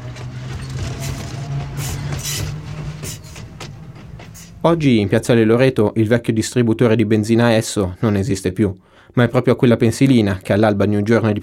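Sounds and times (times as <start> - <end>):
metallic squeals and clatters of a tram: 0.0 - 4.8
tram rolling along rails with motor hum and rumbling wheels: 0.0 - 6.2
speech: 4.6 - 11.4.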